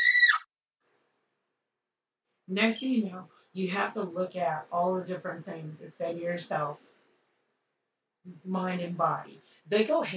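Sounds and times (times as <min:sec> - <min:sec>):
person screaming in free fall: 0:00.0 - 0:00.4
speech: 0:02.5 - 0:06.9, 0:08.2 - 0:10.1.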